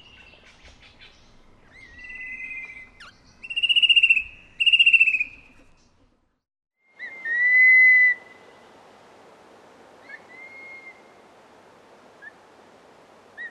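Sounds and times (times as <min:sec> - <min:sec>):
fan-tailed berrypecker calling with whistles and buzzy trills in Papua New Guinea: 0:00.0 - 0:05.9, 0:06.8 - 0:08.6, 0:10.0 - 0:11.2.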